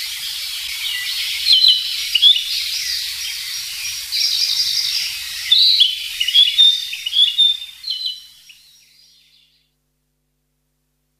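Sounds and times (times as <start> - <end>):
Narcissus flycatcher warbling chirps and upslurred whistles: 0.2 - 8.6.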